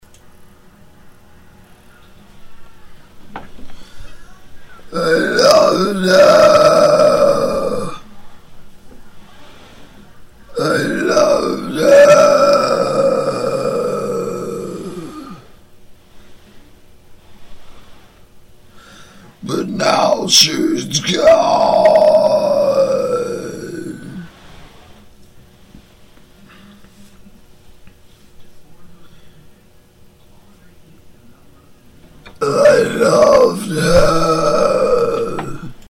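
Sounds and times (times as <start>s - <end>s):
death metal vocal warmup exercises: 4.9s - 8.0s, 10.5s - 15.5s, 19.4s - 24.3s, 32.4s - 35.8s.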